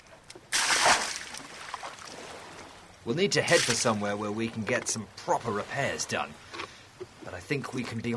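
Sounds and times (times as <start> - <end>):
water scooped and tossed out of a boat splashing: 0.4 - 6.4
speech: 3.1 - 6.4, 7.3 - 8.1.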